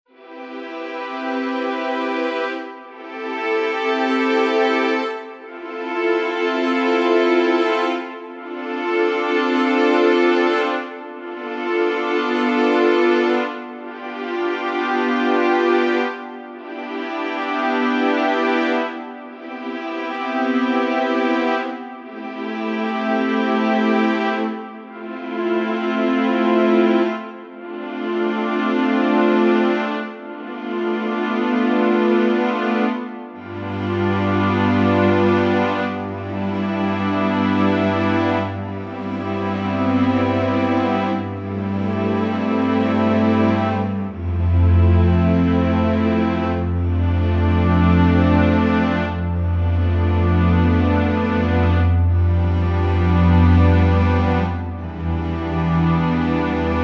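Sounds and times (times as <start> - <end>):
string progression: 0.1 - 56.8.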